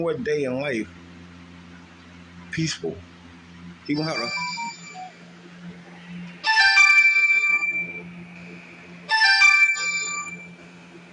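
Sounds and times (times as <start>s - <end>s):
speech: 0.0s - 1.0s, 2.5s - 4.6s
faint low hum: 0.0s - 11.1s
mobile phone ringtone with bright chiming electronic melody: 4.0s - 5.1s, 6.4s - 8.0s, 9.1s - 10.5s.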